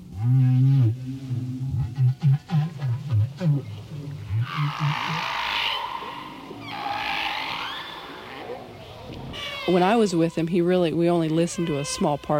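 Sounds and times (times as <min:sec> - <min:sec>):
whale feeding song calls: 0:00.1 - 0:10.3, 0:11.1 - 0:12.3
loud high trumpeting whale wail with a raspy edge: 0:04.4 - 0:10.0
speech: 0:09.7 - 0:12.3.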